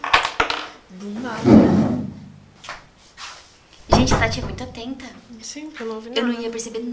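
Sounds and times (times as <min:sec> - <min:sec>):
speech: 0:00.9 - 0:01.6, 0:04.0 - 0:06.9
airy scraping swishes: 0:01.3 - 0:02.6
door opening with a low booming rumble: 0:01.4 - 0:02.6, 0:03.9 - 0:05.0.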